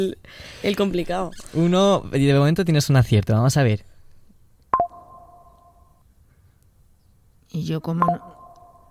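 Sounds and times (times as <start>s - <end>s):
speech: 0.0s - 3.9s, 7.5s - 8.4s
Instagram app notification chime: 4.8s - 6.0s, 8.0s - 8.8s.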